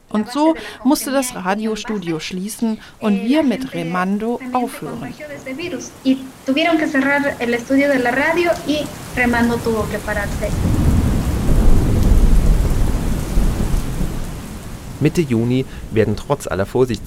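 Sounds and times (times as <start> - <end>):
heavy rain in the Ecuadorian rainforest: 0.0 - 17.0
speech: 0.1 - 10.8, 15.0 - 17.0
deep rolling thunder: 6.9 - 16.0.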